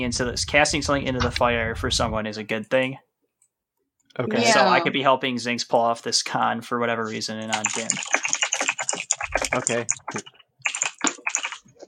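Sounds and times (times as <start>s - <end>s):
speech: 0.0s - 3.1s, 4.2s - 8.3s, 9.5s - 10.4s
typing on a computer keyboard: 7.4s - 11.8s.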